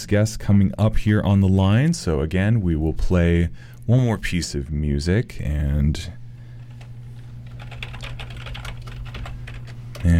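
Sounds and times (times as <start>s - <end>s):
speech: 0.0s - 6.2s
low constant hum: 0.0s - 10.1s
typing on a computer keyboard: 7.4s - 10.1s.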